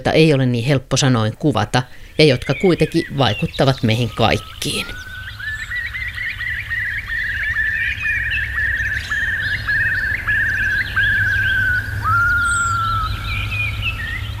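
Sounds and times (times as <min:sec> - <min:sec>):
speech: 0:00.0 - 0:05.1
bird singing rapid repeated chirping phrases: 0:00.0 - 0:14.3.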